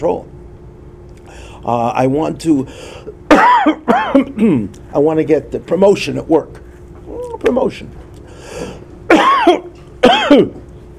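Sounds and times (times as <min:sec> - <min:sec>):
speech: 0:00.0 - 0:00.3, 0:01.6 - 0:06.6, 0:07.4 - 0:08.8, 0:10.3 - 0:10.6
person coughing harshly: 0:03.3 - 0:04.6, 0:09.1 - 0:10.6.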